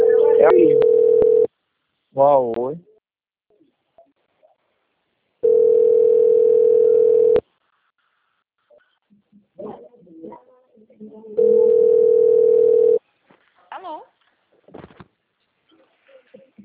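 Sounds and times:
ringback tone of an outgoing phone call: 0.0 - 1.5, 5.4 - 7.4, 11.4 - 13.0
speech: 2.2 - 2.9.

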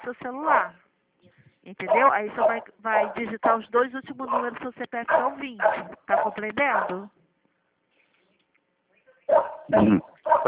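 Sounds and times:
speech: 0.0 - 7.2, 9.3 - 10.4
dog barking: 1.9 - 3.6, 4.2 - 7.0, 9.3 - 10.4.

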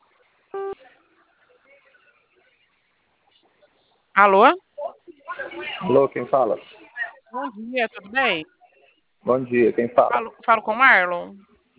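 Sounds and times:
phone keypad tone from pressing zero: 0.6 - 0.8
speech: 4.2 - 4.6, 5.6 - 6.7, 7.3 - 8.6, 9.2 - 11.5.

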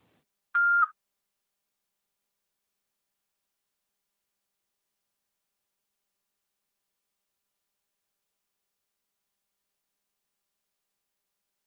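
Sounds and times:
answering machine beep: 0.6 - 0.9.

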